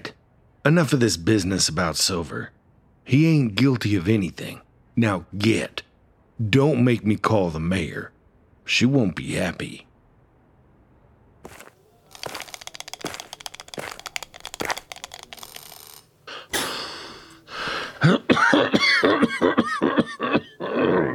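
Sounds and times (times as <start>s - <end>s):
speech: 0.6s - 5.8s, 6.4s - 9.9s
crinkly crackling clicks: 11.5s - 16.1s
person coughing and hacking harshly: 16.4s - 21.1s.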